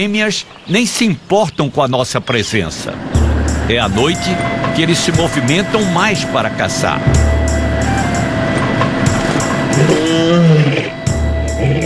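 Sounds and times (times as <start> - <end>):
speech: 0.0 - 7.6, 9.8 - 11.0
steady hum: 2.6 - 11.8
lion roaring on safari: 9.7 - 11.8.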